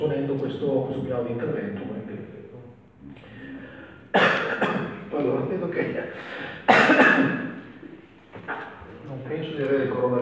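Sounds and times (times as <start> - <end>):
speech: 0.3 - 2.4, 4.2 - 7.4
single harsh cough from a person with a cold: 4.1 - 5.0, 6.6 - 7.6.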